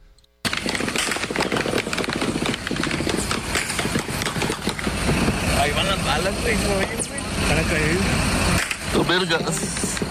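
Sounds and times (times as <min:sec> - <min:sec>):
gunfire bursts heard from a highway: 0:00.4 - 0:05.5
passing vehicles rumbling on a highway: 0:00.5 - 0:10.0.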